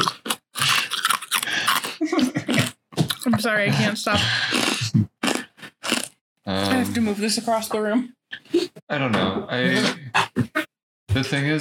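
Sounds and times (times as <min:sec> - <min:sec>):
ice being chewed: 0:00.0 - 0:03.3, 0:04.5 - 0:06.1
speech: 0:03.4 - 0:04.7, 0:06.6 - 0:08.2, 0:08.9 - 0:10.5, 0:11.2 - 0:11.5.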